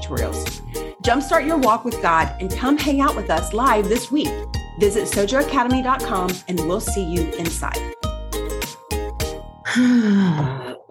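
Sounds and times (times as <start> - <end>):
speech: 0.1 - 8.0, 9.7 - 10.6
person groaning: 9.7 - 10.8.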